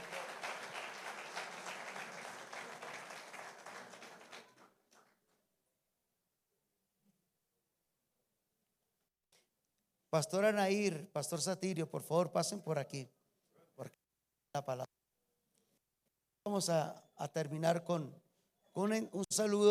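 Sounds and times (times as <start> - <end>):
audience at a Christian church gathering applauding: 0.0 - 5.3
faint scattered claps: 0.0 - 5.4
speech: 10.1 - 13.2, 13.8 - 14.0, 14.6 - 14.9, 16.6 - 18.2, 18.8 - 19.6.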